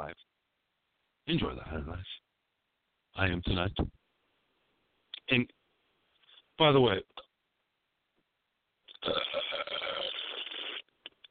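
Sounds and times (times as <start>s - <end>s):
speech: 1.3s - 2.2s, 3.2s - 4.0s, 5.3s - 5.6s, 6.6s - 7.2s, 9.0s - 9.8s
long rough burp after drinking beer all night: 8.9s - 10.9s.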